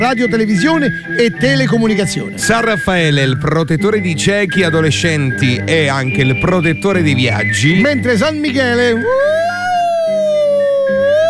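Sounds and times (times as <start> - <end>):
speech: 0.0 - 9.7
siren wailing: 8.9 - 11.2.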